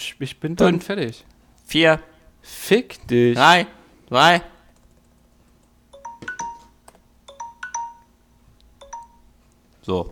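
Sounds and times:
faint steady hum: 0:00.0 - 0:10.1
speech: 0:00.1 - 0:04.5, 0:09.9 - 0:10.1
electronic alarm tone of short bright melodic beeps from a device: 0:06.0 - 0:08.2, 0:08.8 - 0:09.3.

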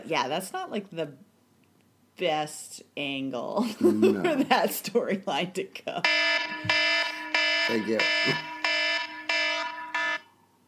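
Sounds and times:
speech: 0:00.1 - 0:01.3, 0:02.2 - 0:06.8, 0:07.7 - 0:08.5
game show buzzer: 0:06.0 - 0:10.2.

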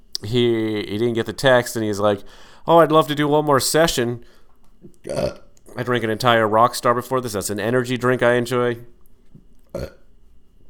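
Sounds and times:
speech: 0:00.2 - 0:09.0, 0:09.7 - 0:10.0
burp after drinking an energy drink: 0:04.8 - 0:05.5, 0:09.7 - 0:10.1.

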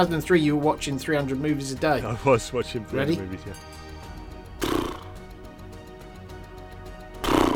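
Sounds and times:
speech: 0:00.0 - 0:03.9
horse whinny sound effect from a movie: 0:04.6 - 0:05.2, 0:07.2 - 0:07.5.

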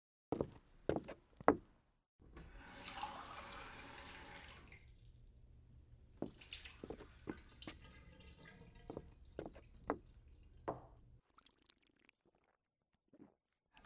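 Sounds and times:
speech: 0:00.3 - 0:00.6
water poured into a glass: 0:02.5 - 0:05.2, 0:06.2 - 0:12.6.

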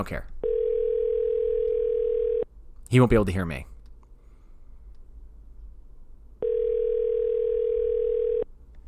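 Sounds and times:
speech: 0:00.0 - 0:00.3, 0:02.9 - 0:03.7
outgoing phone call electronic ringback tone: 0:00.4 - 0:02.4, 0:06.4 - 0:08.4.

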